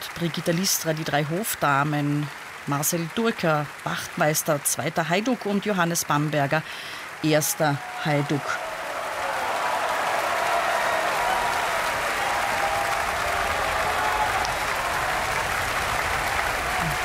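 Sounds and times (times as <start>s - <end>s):
large audience applauding after an opera performance in a hall: 0.0s - 4.6s, 6.0s - 17.0s
speech: 0.2s - 8.7s
faint crowd murmur: 11.2s - 17.0s.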